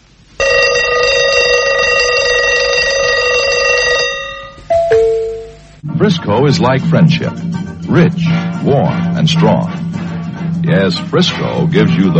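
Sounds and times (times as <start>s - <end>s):
alarm clock bell ringing loudly: 0.4s - 5.8s
speech: 6.0s - 9.8s, 10.6s - 12.1s.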